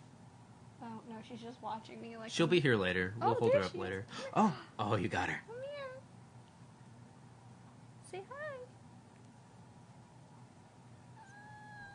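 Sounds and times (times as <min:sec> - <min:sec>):
speech: 0:00.8 - 0:05.6, 0:08.1 - 0:08.4
cat whining meow: 0:11.2 - 0:11.9.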